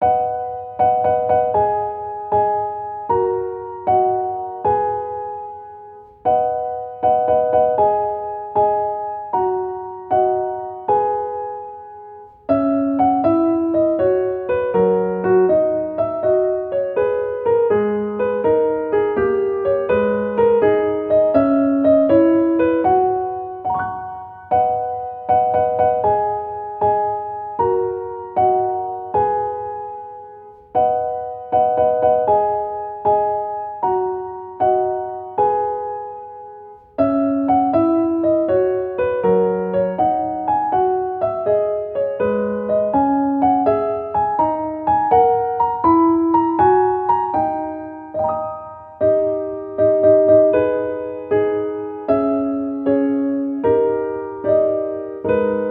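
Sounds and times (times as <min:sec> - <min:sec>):
classical piano march: 0:00.0 - 0:55.6.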